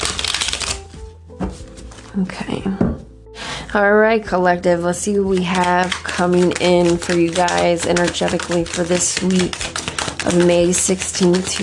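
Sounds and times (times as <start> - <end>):
deck of tarot cards being shuffled: 0.0 - 2.1, 5.4 - 11.6
speech: 2.2 - 3.0, 3.7 - 11.6.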